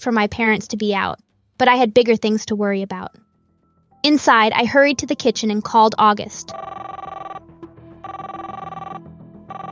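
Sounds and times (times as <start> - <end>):
speech: 0.0 - 3.3, 4.0 - 7.0
telephone ringback tone heard through the line: 6.5 - 7.4, 8.0 - 9.7.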